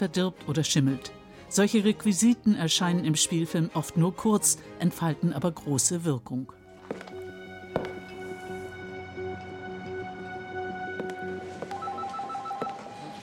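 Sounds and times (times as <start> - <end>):
speech: 0.0 - 7.1
old-style 1970s telephone bell ringing: 11.6 - 13.2.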